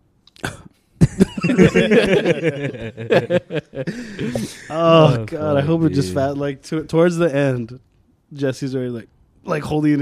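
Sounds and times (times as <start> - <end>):
throat-clearing cough: 0.4 - 1.4
breathy chuckling and laughter: 1.0 - 6.1
speech: 1.4 - 9.9.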